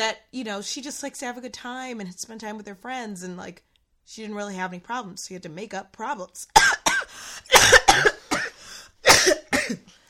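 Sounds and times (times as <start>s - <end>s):
speech: 0.0s - 8.2s
person coughing in harsh hacking bursts: 6.6s - 9.9s.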